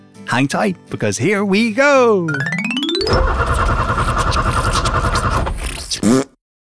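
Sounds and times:
speech: 0.3s - 3.9s
cartoonish truck engine failing to start: 2.8s - 6.0s.

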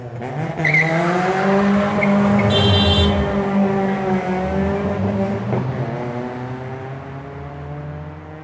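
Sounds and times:
car engine revving hard: 0.1s - 8.4s.

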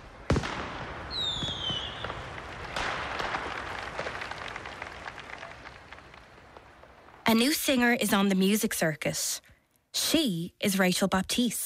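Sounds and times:
sharp firework bangs: 0.0s - 7.2s
fireworks crackling and popping at a firework display: 0.0s - 8.4s
descending firework whistle: 1.1s - 5.8s
speech: 7.3s - 11.6s.

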